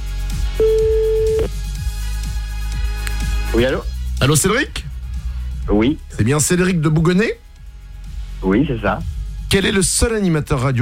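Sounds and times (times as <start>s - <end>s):
rhythmic music bed: 0.0s - 10.8s
telephone call tone: 0.6s - 1.5s
speech: 3.6s - 4.9s, 5.7s - 7.4s, 8.4s - 10.8s.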